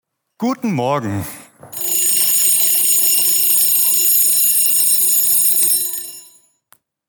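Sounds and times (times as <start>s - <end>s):
speech: 0.4s - 1.4s
alarm clock ringing with a high-pitched buzzing tone: 1.7s - 6.5s.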